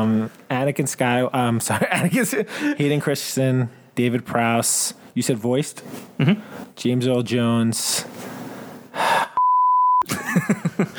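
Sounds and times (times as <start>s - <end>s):
speech: 0.0s - 8.4s, 10.3s - 10.9s
breathy exhale: 8.0s - 9.4s
censor bleep over a swear word: 9.4s - 10.0s
laughter: 10.0s - 10.9s.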